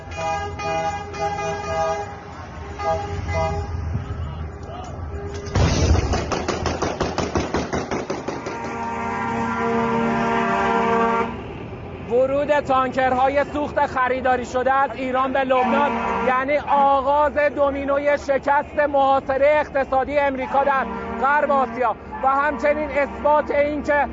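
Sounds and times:
car horns honking in a noisy street in Lebanon: 0.0 - 5.6, 8.2 - 11.5, 15.4 - 17.0, 20.3 - 24.0
celebratory gunfire in Lebanon: 5.5 - 8.8
speech: 12.6 - 24.1.

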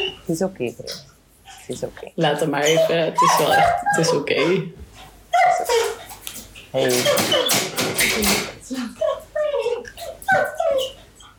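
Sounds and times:
speech: 0.3 - 1.1, 1.7 - 4.8, 6.7 - 9.1
dog whimpering: 2.5 - 4.6, 5.3 - 6.2, 6.9 - 11.3.

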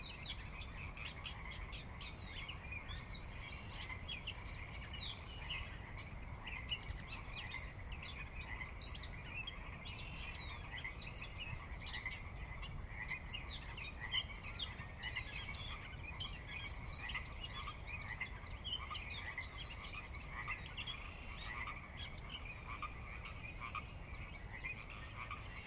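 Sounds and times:
Pacific chorus frog chorus at dusk in Washington, USA: 0.0 - 25.6
low rumbling background noise: 0.0 - 25.6.

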